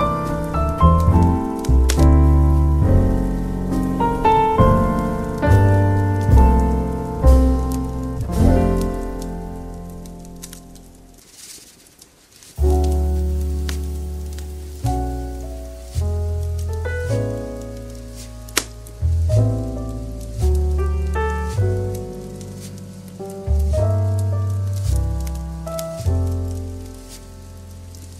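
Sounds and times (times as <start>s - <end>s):
faint fireplace crackles: 0.0s - 28.1s
soft light jazz with low bass and ringing chords: 0.0s - 28.1s.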